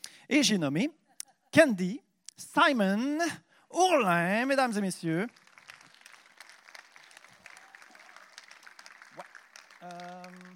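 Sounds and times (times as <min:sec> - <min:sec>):
speech: 0:00.3 - 0:05.4
audience applause: 0:05.2 - 0:10.5.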